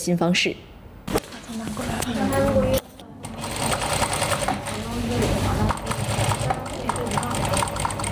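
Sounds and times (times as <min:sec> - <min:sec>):
chatter: 0:01.1 - 0:08.1
sewing machines clattering: 0:02.4 - 0:08.1.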